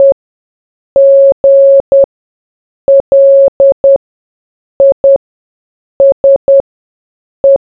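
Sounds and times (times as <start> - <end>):
morse code beeps: 1.0 - 2.1, 2.9 - 4.0, 4.8 - 5.2, 6.0 - 6.6.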